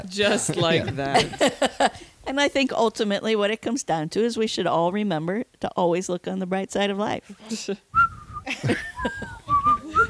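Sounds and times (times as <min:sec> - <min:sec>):
speech: 0:00.0 - 0:07.9, 0:08.5 - 0:09.2
noise: 0:00.0 - 0:10.0
person whistling a short bouncy tune: 0:08.0 - 0:10.0.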